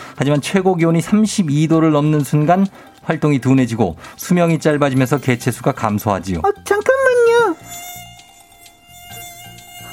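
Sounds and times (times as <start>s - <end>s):
speech: 0.2s - 6.9s
mosquito whine: 7.2s - 9.9s.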